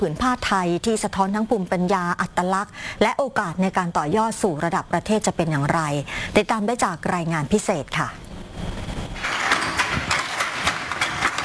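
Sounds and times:
speech: 0.0s - 8.8s
low hum: 0.0s - 11.4s
hand loom beating threads while weaving cloth: 9.2s - 11.4s.

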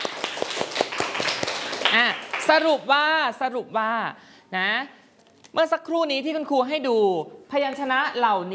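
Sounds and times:
classroom children clapping for a classmate: 0.0s - 2.8s
speech: 1.9s - 8.5s.

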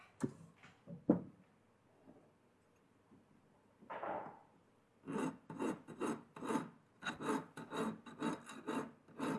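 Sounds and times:
large file smoothing a welded metal edge: 5.0s - 9.3s.

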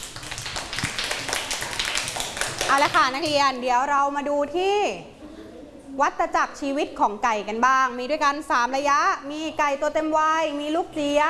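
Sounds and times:
classroom students clapping for a classmate: 0.0s - 3.4s
speech: 2.7s - 5.1s, 6.0s - 11.2s.

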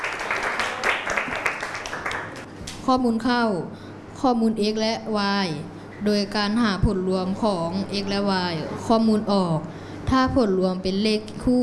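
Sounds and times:
classroom applause for a student: 0.0s - 2.8s
speech: 2.9s - 11.6s.

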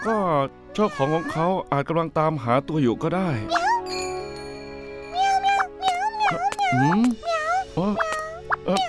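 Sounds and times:
speech: 0.0s - 3.7s, 6.7s - 8.8s
kitten meowing: 5.2s - 8.8s.

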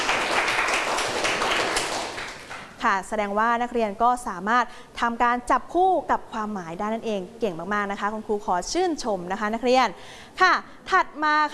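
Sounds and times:
students clapping for themselves in a classroom: 0.0s - 2.8s
speech: 2.8s - 11.5s.

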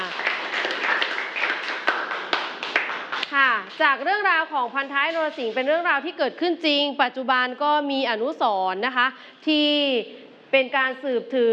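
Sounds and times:
class of students clapping for a classmate: 0.0s - 3.4s
speech: 3.8s - 11.5s.

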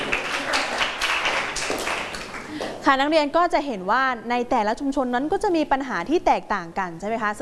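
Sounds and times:
students clapping in a classroom: 0.0s - 2.8s
speech: 2.9s - 7.3s.

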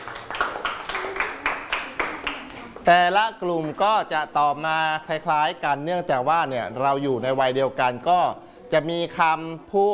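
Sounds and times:
classroom clapping for a student: 0.0s - 2.9s
speech: 2.9s - 9.9s.

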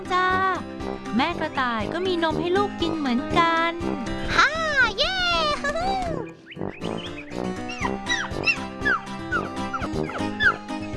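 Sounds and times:
dense steady music: 0.0s - 10.9s
speech: 1.2s - 5.1s
puppies whining and yipping: 6.6s - 10.9s.

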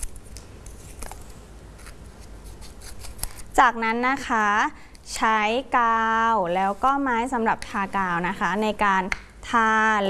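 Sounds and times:
scissors cutting coloured paper into squares: 0.0s - 1.2s, 1.8s - 3.5s
speech: 3.6s - 10.0s.

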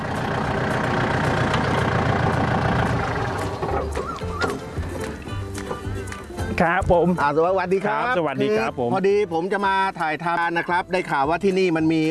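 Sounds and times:
engine idling at a school in Surin province Thailand: 0.0s - 6.0s
speech: 6.6s - 12.0s.

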